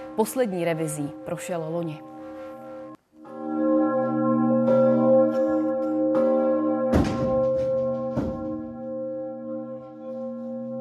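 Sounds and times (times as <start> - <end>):
speech: 0.2 - 2.1
large church bell tolling in a tower: 2.3 - 10.8.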